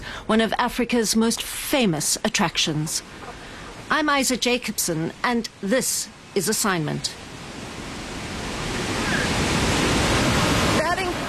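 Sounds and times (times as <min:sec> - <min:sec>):
speech: 0:00.3 - 0:07.2
thunderous roar of rushing water from a large waterfall: 0:02.6 - 0:11.2.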